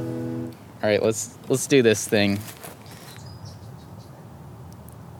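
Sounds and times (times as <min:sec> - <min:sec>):
speech: 0:00.8 - 0:02.7
birds chirping outside: 0:01.0 - 0:04.4.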